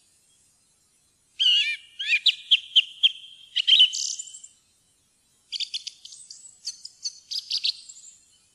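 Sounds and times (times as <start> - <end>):
song thrush singing: 1.4 - 4.6, 5.5 - 8.5.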